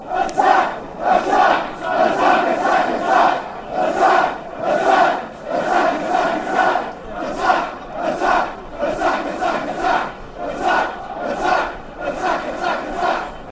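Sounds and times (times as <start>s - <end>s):
fans chanting: 0.0s - 13.5s.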